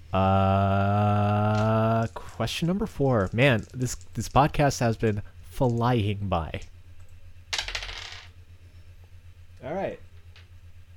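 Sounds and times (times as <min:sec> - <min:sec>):
faint low hum: 0:00.0 - 0:10.9
speech: 0:00.1 - 0:01.1, 0:02.0 - 0:06.8
dice clattering across a hard surface: 0:01.5 - 0:06.0, 0:07.5 - 0:08.3.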